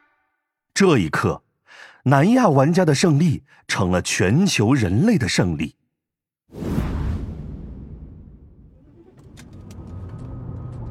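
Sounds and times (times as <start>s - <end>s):
speech: 0.8s - 5.8s
car driving across city ruins with engine rumble: 8.6s - 10.9s.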